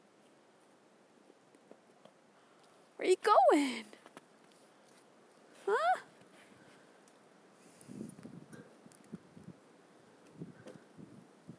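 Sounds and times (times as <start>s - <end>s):
speech: 3.0s - 4.0s
gusty cold wind buffeting the microphone: 7.8s - 11.5s.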